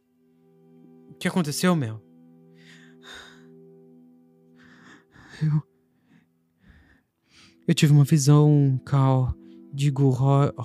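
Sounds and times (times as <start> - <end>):
steady low musical drone: 0.0 - 10.6
speech: 1.1 - 2.1, 5.4 - 5.7, 7.7 - 10.6
anxious panting breaths of a frightened girl: 4.6 - 7.6.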